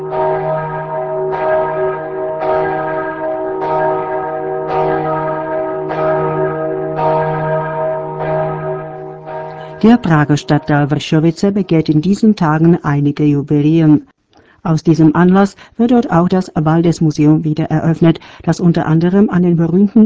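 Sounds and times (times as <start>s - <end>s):
large deep cathedral bell tolling: 0.0s - 12.0s
speech: 9.8s - 20.0s.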